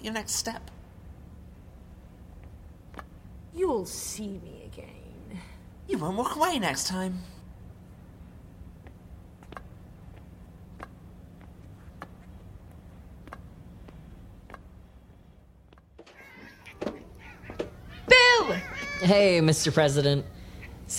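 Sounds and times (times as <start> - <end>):
speech: 0.0 - 0.8, 3.6 - 7.4, 19.0 - 20.9
low steady hum: 0.0 - 20.9
soft ticking clicks: 8.8 - 14.7
cat meowing: 16.1 - 19.3.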